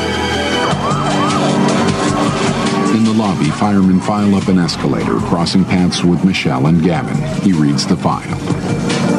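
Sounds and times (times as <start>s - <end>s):
fire truck siren wailing as the truck pulls up on a street: 0.0s - 3.0s
speech: 3.3s - 9.0s.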